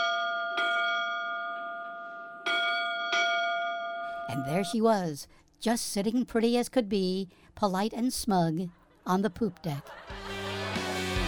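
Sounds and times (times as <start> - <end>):
bell of a 100-foot yacht on the Hullabaloo River in Alabama: 0.0 - 4.8
speech: 4.3 - 10.2
laughter: 8.7 - 11.2.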